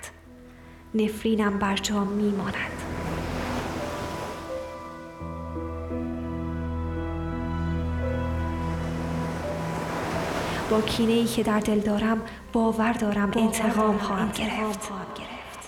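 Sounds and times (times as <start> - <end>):
speech: 0.9 - 2.8, 10.7 - 15.4
sea waves washing onto the shore: 2.3 - 5.3, 8.2 - 12.5
low droning tone: 2.6 - 15.1.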